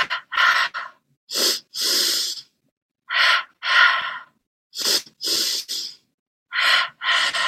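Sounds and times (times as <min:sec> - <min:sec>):
pulse breathing with nasal inhales and mouth exhales: 0:00.0 - 0:07.4.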